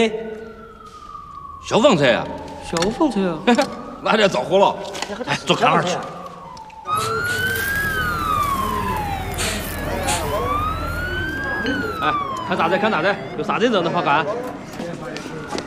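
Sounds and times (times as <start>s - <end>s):
loud fire engine siren wailing: 0.0s - 15.6s
voices talking: 0.0s - 15.6s
low engine rumble: 6.8s - 13.6s.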